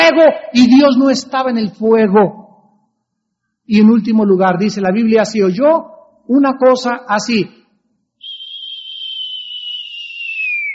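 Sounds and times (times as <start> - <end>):
speech: 0.1 - 2.4, 3.7 - 7.6
soft gentle whistle: 8.2 - 10.7.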